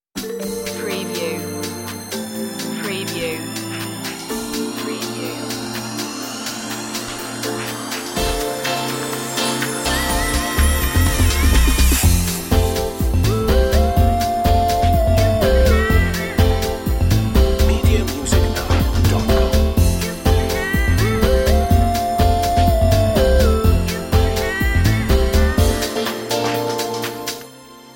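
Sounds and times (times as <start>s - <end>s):
vintage drum beats: 0.2s - 27.4s.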